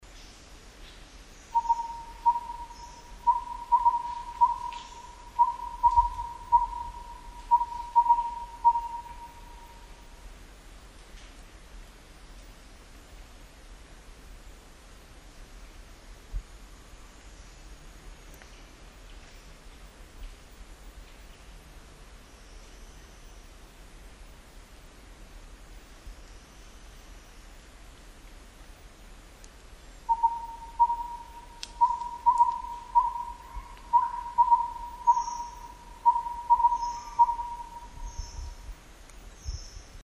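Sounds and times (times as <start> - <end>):
Collared Owlet calling in Laos: 1.5 - 10.0, 30.1 - 38.4.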